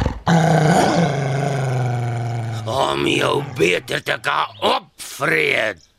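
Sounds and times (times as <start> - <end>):
wolf growling: 0.0 - 4.2
speech: 3.0 - 5.9.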